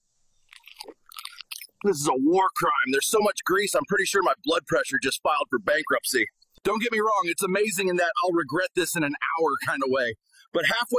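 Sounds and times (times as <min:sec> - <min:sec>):
chewing a bite of a triple-patty burger: 0:00.5 - 0:01.8
speech: 0:01.8 - 0:10.9.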